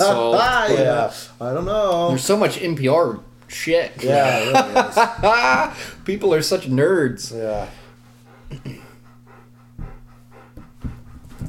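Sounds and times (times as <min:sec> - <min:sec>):
speech: 0:00.1 - 0:07.8, 0:08.5 - 0:08.8
laughter: 0:04.0 - 0:06.0, 0:08.5 - 0:09.0
dog breathing and panting: 0:05.0 - 0:11.4.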